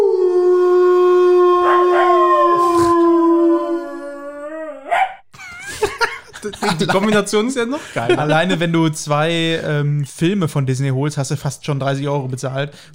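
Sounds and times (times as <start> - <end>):
wolf howling: 0.0 - 5.2
wolf short yips and rough barks: 4.8 - 5.2
laughter: 5.4 - 8.9
speech: 6.6 - 12.9.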